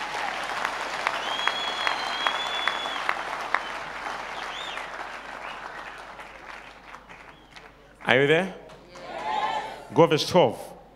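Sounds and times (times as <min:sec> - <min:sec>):
large crowd clapping hands: 0:00.0 - 0:09.4
faint whistle or cry: 0:01.2 - 0:05.7, 0:07.1 - 0:07.7
speech: 0:08.1 - 0:08.6, 0:09.9 - 0:10.7.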